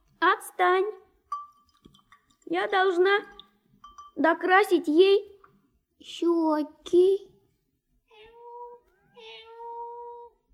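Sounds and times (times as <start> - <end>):
speech: 0.6 - 1.0, 2.5 - 3.4, 4.2 - 5.3, 6.0 - 7.3
cat meowing to be let in: 8.1 - 10.5.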